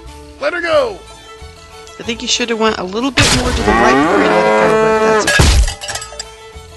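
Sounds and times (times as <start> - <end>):
speech: 0.4 - 1.1, 2.0 - 5.4
cow mooing: 3.5 - 5.4
heavy crashing impact: 5.2 - 6.2
scattered clinks and rattles: 5.2 - 6.4.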